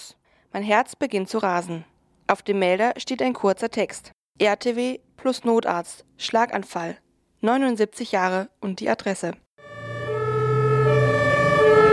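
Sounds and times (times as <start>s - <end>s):
speech: 0.5s - 9.4s
ambulance siren on an emergency drive to a stroke call: 9.6s - 11.9s.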